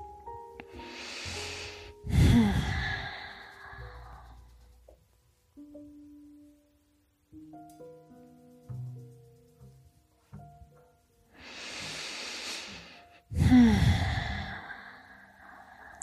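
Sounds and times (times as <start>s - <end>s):
deep breathing during a simple twist exercise: 0.6s - 4.7s, 11.3s - 16.0s.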